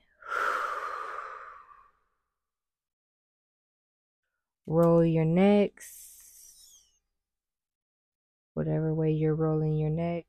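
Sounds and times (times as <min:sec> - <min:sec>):
deep breathy exhale during a guided breathing exercise: 0:00.1 - 0:02.0
speech: 0:04.7 - 0:06.1, 0:08.6 - 0:10.2.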